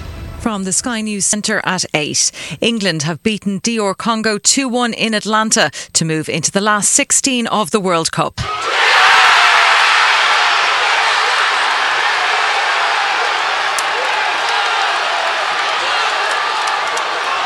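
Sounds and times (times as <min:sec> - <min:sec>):
speech: 0:00.5 - 0:09.2
football supporters in Manchester cheering and shouting celebrating a winning World Cup goal for England: 0:08.4 - 0:17.4.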